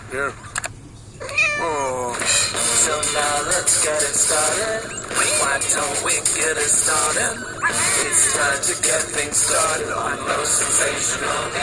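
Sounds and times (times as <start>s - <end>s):
speech: 0.1s - 0.6s, 2.9s - 11.6s
cat meowing: 1.2s - 2.0s.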